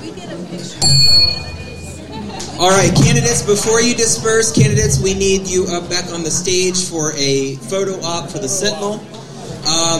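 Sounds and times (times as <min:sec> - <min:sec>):
murmur of voices in a room: 0:00.0 - 0:09.9
speech: 0:00.5 - 0:01.6, 0:02.2 - 0:09.9
bright metallic bell strike: 0:00.8 - 0:02.3.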